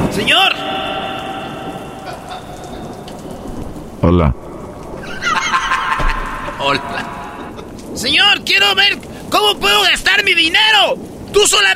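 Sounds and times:
steady rain spattering on a surface: 0:00.0 - 0:11.7
speech: 0:00.2 - 0:00.7, 0:04.0 - 0:04.5, 0:06.6 - 0:06.9, 0:08.0 - 0:11.7
laughter: 0:01.7 - 0:03.2, 0:05.0 - 0:07.8.

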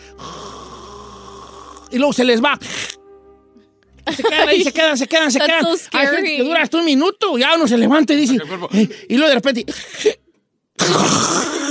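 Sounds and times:
person imitating snoring with a rasping breath: 0:00.0 - 0:02.0, 0:10.8 - 0:11.6
speech: 0:01.9 - 0:02.9, 0:04.2 - 0:10.2, 0:10.9 - 0:11.6
laughter: 0:04.0 - 0:06.3.

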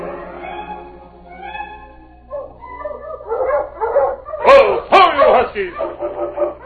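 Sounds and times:
dog barking and yelping: 0:00.4 - 0:06.6.

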